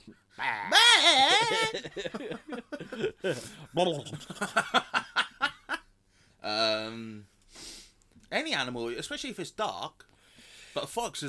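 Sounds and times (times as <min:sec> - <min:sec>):
speech: 0:00.1 - 0:02.6, 0:03.2 - 0:04.9, 0:08.6 - 0:10.1, 0:10.8 - 0:11.2
person imitating goat bleating: 0:00.4 - 0:01.8
person snickering: 0:00.5 - 0:03.5
laughter: 0:00.8 - 0:05.8.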